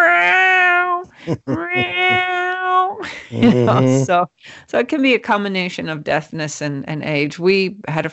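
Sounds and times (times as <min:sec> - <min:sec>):
cat meowing: 0:00.0 - 0:03.0
laughter: 0:01.1 - 0:02.4, 0:03.0 - 0:04.1
speech: 0:01.3 - 0:08.1.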